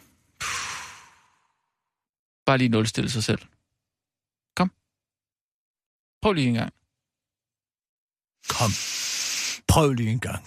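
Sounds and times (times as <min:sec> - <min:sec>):
deep breath exhaled: 0:00.0 - 0:01.8
speech: 0:02.5 - 0:03.6, 0:04.6 - 0:04.8, 0:06.2 - 0:06.8, 0:08.4 - 0:09.1, 0:09.7 - 0:10.4.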